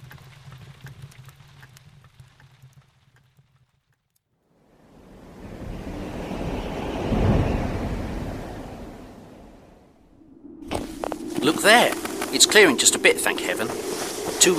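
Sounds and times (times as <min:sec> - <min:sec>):
strong southern wind blowing through fog: 0:04.8 - 0:14.5
low rumbling background: 0:04.9 - 0:14.5
speech: 0:11.6 - 0:14.5.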